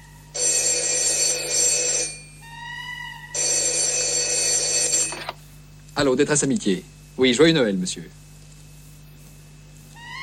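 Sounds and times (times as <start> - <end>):
electronic telephone ringing at a friendship helpline: 0.3 - 2.4, 3.3 - 5.4
speech: 6.0 - 8.3.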